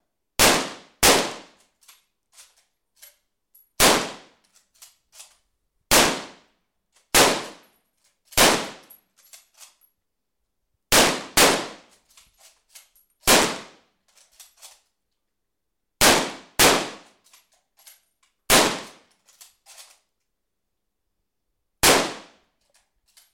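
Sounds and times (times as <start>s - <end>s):
Lee Enfield rifle gunshots: 0.4s - 1.5s, 3.8s - 4.3s, 5.9s - 6.4s, 7.1s - 7.6s, 8.4s - 8.8s, 10.9s - 11.8s, 13.3s - 13.7s, 16.0s - 17.0s, 18.5s - 19.0s, 21.8s - 22.3s.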